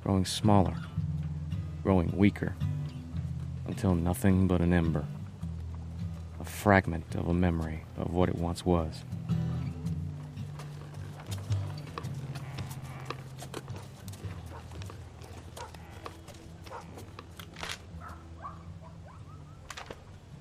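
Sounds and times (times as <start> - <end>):
speech: 0.0 - 1.0, 1.8 - 2.7, 3.7 - 5.2, 6.4 - 9.3
horses' hooves clip-clopping: 3.1 - 18.9.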